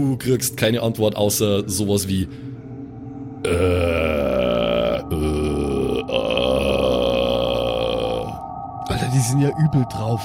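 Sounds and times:
speech: 0.0 - 2.5, 3.4 - 5.4, 9.2 - 10.2
loud burp: 3.4 - 8.4.

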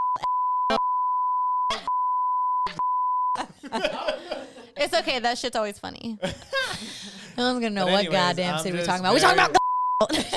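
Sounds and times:
censor bleep tone: 0.0 - 3.4, 9.6 - 10.1
laughter: 3.4 - 4.9, 6.2 - 10.3
speech: 3.7 - 10.3.

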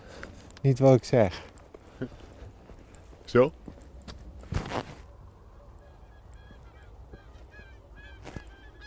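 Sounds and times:
speech: 0.6 - 2.2, 3.3 - 3.6
louder bumps and rustles: 1.6 - 5.1
distant Bewick's swans calling: 5.7 - 8.8.

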